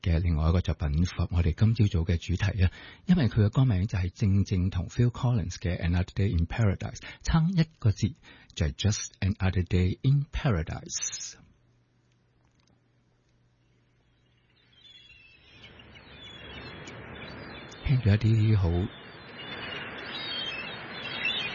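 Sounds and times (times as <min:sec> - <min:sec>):
speech: 0:00.0 - 0:11.4, 0:17.9 - 0:19.0
seagulls calling: 0:13.7 - 0:21.5
steady wash of ocean surf: 0:15.6 - 0:21.5.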